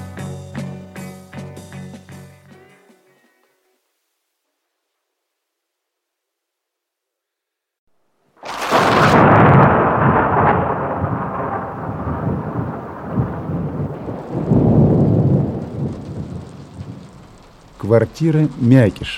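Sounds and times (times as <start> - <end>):
thunder crack and rumble in a night thunderstorm: 8.5 - 19.1
speech: 17.9 - 19.1.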